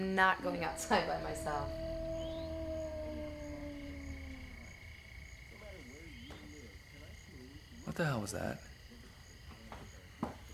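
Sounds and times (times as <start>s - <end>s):
speech: 0.0s - 1.9s, 8.0s - 8.7s
wolf howling: 0.0s - 5.3s
steady low rumble: 0.0s - 5.6s.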